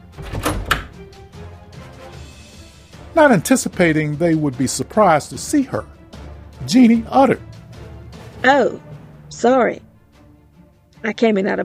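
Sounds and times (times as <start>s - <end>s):
door latch clunk: 0.0s - 1.2s
speech: 3.1s - 6.0s, 6.6s - 7.5s, 8.4s - 9.9s, 11.0s - 11.6s.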